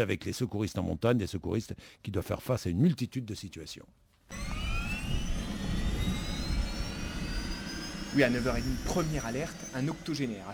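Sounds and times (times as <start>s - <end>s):
speech: 0.0s - 4.6s, 8.1s - 10.5s
rescue helicopter turbine roaring while taking off: 4.3s - 10.5s.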